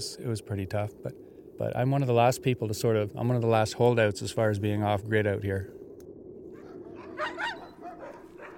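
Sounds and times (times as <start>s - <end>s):
speech: 0.0s - 5.8s
outdoor noise: 0.0s - 8.5s
working sled huskies barking and yipping: 6.5s - 8.5s.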